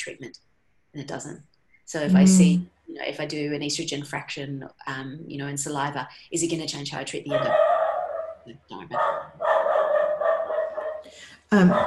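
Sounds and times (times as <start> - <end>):
speech: 0.0 - 7.7, 8.5 - 9.5, 11.1 - 11.8
dog barking: 7.3 - 8.4, 9.0 - 11.1.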